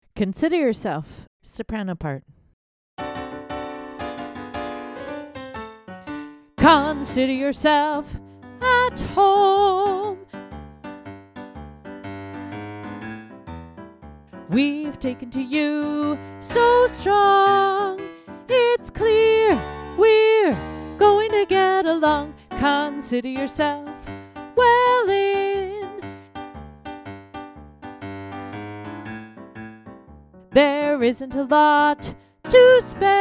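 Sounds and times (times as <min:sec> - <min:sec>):
soprano singing: 0:06.1 - 0:10.3, 0:14.5 - 0:26.1, 0:30.5 - 0:33.1.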